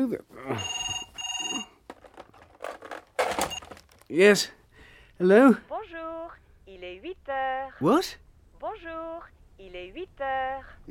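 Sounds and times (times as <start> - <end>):
speech: 0.0 - 0.8, 4.1 - 4.6, 5.2 - 5.7, 7.3 - 10.8
telephone ringing: 0.5 - 1.9, 3.2 - 3.8
rustles and clunks: 1.8 - 4.1.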